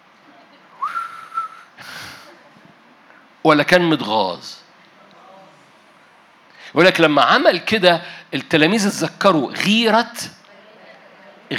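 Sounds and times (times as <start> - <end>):
person whistling: 0.8 - 1.7
breathy hiss: 1.7 - 2.4
speech: 3.4 - 4.6, 6.7 - 10.4.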